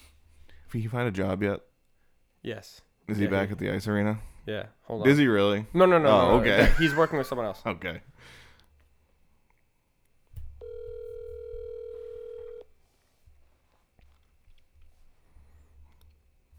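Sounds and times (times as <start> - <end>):
speech: 0.7 - 1.7, 2.4 - 8.4
laughter: 5.8 - 7.8
electronic ringback tone of an outgoing phone call: 10.6 - 12.6.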